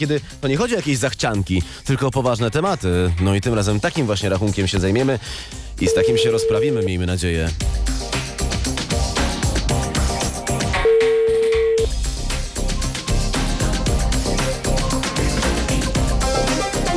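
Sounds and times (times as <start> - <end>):
speech: 0.0 - 8.0
busy loud music: 0.0 - 16.9
telephone ringing tone during an outgoing call: 5.9 - 7.0, 10.8 - 11.9.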